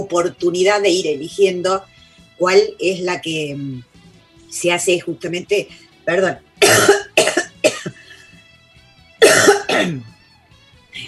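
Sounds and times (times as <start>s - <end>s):
speech: 0.0s - 3.9s, 4.5s - 7.3s, 9.8s - 10.1s
person coughing harshly: 6.6s - 8.2s, 9.2s - 10.2s.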